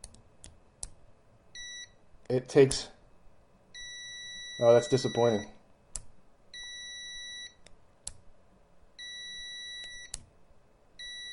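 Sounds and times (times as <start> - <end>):
multimeter continuity buzzer high-pitched electronic beep: 1.6 - 2.0, 3.8 - 5.5, 6.6 - 7.6, 9.0 - 10.2, 11.0 - 11.3
speech: 2.3 - 3.0, 4.6 - 5.6.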